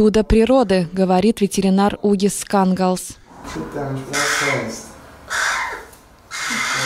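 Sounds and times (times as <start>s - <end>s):
speech: 0.0s - 5.5s
young crow chick cawing in harsh raspy bursts: 4.1s - 6.8s.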